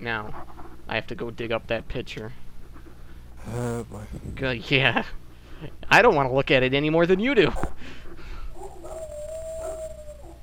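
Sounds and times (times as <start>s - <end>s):
speech: 0.0s - 2.4s, 3.4s - 8.0s
constant low hum: 0.0s - 10.4s
dog whimpering and yipping: 8.6s - 10.4s.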